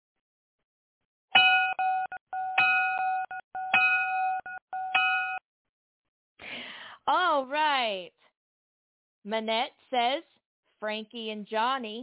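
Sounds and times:
bright electronic-sounding bell ringing: 1.4 - 5.4
speech: 7.1 - 8.3, 9.2 - 12.0.

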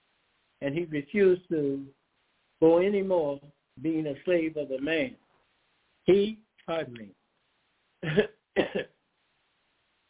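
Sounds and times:
speech: 0.6 - 2.0, 2.6 - 5.2, 6.1 - 7.2, 8.0 - 8.9
person clearing throat mid-talk: 8.0 - 9.0.

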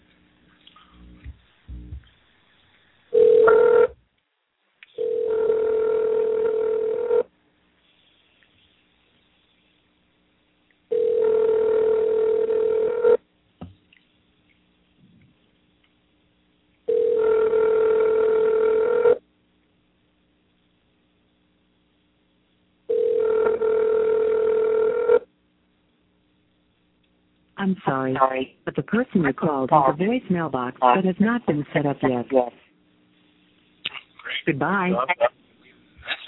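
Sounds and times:
long steady telephone ringback tones: 3.2 - 3.9, 5.0 - 7.2, 10.9 - 13.2, 16.9 - 19.2, 22.9 - 25.2
speech: 27.7 - 32.6, 34.4 - 35.3.

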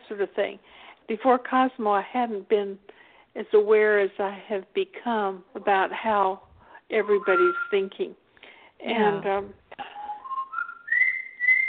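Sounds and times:
speech: 0.1 - 8.2, 8.8 - 9.6
pet bird whistling: 7.0 - 7.9, 10.0 - 11.6.

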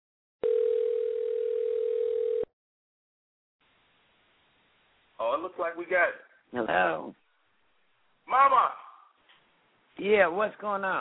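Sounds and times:
telephone dial tone while dialing a call: 0.4 - 2.5
speech: 5.3 - 7.2, 8.3 - 8.8, 10.0 - 10.9.

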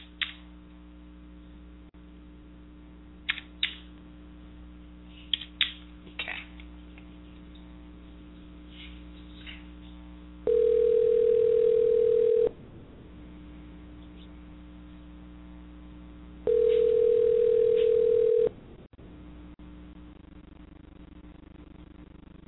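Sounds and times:
low hum: 0.0 - 22.4
telephone tone on a switchboard line while a call is dialed: 10.4 - 12.6, 16.4 - 18.6.

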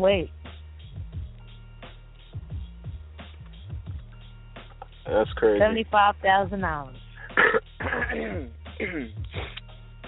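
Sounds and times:
speech: 0.0 - 0.4, 5.1 - 7.0, 8.1 - 9.5
person clearing throat: 7.3 - 9.6
person coughing: 7.3 - 9.6.

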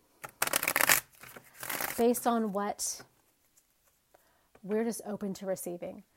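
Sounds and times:
deck of cards being shuffled: 0.2 - 2.3
speech: 2.0 - 3.1, 4.6 - 6.1.

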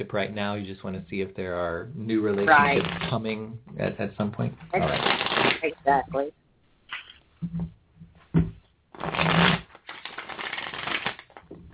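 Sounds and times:
speech: 0.0 - 6.4, 7.4 - 7.8
deck of playing cards being shuffled: 2.3 - 3.3, 4.8 - 5.8, 8.9 - 11.7.

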